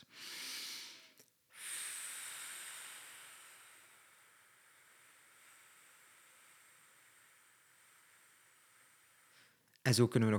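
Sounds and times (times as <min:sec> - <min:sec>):
long steady airy exhale through the mouth in a breathing exercise: 0:00.0 - 0:09.6
brief breath in through the nose in a breathing exercise: 0:00.0 - 0:09.7
speech: 0:09.8 - 0:10.3.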